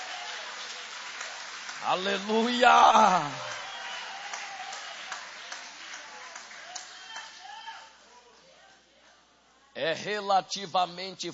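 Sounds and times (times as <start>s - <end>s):
audience applauding at a church service: 0.0s - 7.8s
speech: 1.8s - 3.5s, 9.9s - 11.3s.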